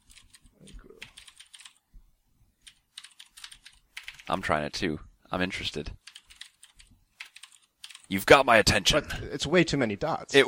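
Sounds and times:
typing on a computer keyboard: 0:00.0 - 0:01.8, 0:02.6 - 0:04.3, 0:06.0 - 0:08.1
speech: 0:04.3 - 0:06.0, 0:08.1 - 0:10.4.

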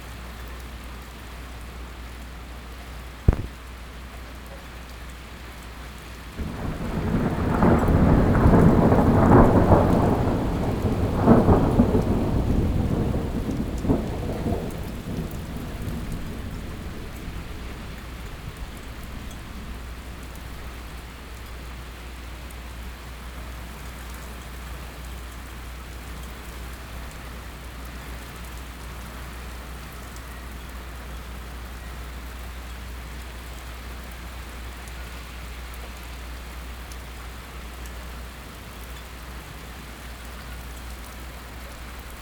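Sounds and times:
steady even hiss of rain: 0:00.0 - 0:42.2
sharp thunder crack: 0:06.4 - 0:21.2.

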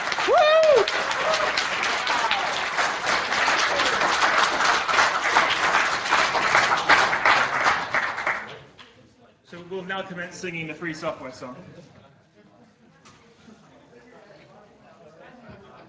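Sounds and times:
crowd applauding: 0:00.0 - 0:08.7
speech: 0:10.0 - 0:12.0.

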